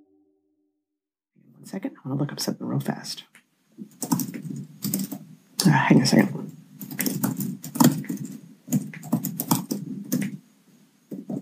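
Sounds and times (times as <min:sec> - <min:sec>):
speech: 0:01.6 - 0:03.9, 0:05.7 - 0:06.5
typing on a computer keyboard: 0:03.8 - 0:05.7, 0:06.4 - 0:10.4, 0:11.1 - 0:11.4.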